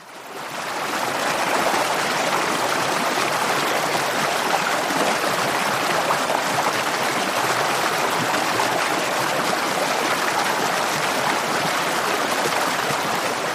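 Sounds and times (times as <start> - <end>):
waterfall rushing and splashing: 0.0 - 13.5.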